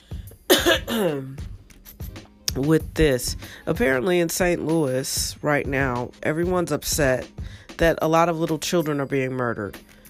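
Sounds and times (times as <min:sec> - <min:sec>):
drawn-out voiced throat-clearing: 0:00.5 - 0:01.4
harsh cough: 0:00.5 - 0:01.4
speech: 0:00.9 - 0:01.5, 0:02.6 - 0:09.9.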